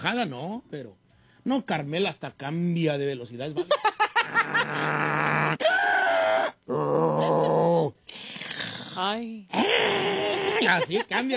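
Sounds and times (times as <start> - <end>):
speech: 0.0 - 5.7, 9.0 - 11.3
person imitating snoring like a little pig: 4.4 - 5.6, 6.7 - 10.5.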